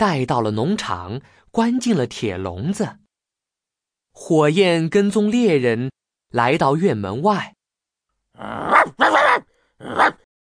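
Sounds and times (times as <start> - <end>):
speech: 0.0 - 3.0, 4.2 - 7.6, 8.4 - 8.8, 9.8 - 10.2
hunting dog barking at a farm: 8.7 - 10.2.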